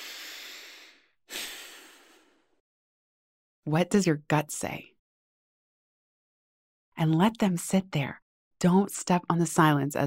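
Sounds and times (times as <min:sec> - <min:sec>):
deep breath in and out: 0:00.0 - 0:02.6
speech: 0:03.6 - 0:04.9, 0:07.0 - 0:10.0.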